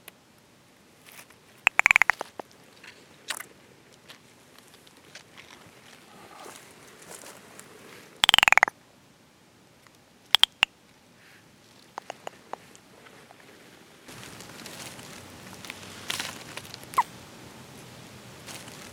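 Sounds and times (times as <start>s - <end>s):
California giant salamander Dicamptodon ensatus rasping calls: 1.7s - 2.4s, 8.2s - 8.7s, 10.4s - 10.7s, 12.0s - 12.7s
clicks: 1.7s - 2.4s, 10.4s - 10.7s, 12.0s - 12.6s.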